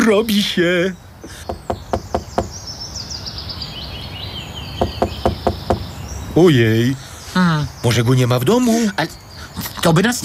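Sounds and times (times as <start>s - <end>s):
speech: 0.0s - 1.6s, 6.4s - 10.2s
birds chirping and twittering: 0.0s - 10.2s
firm knocks on a wooden hut door: 1.5s - 2.5s, 4.8s - 5.9s.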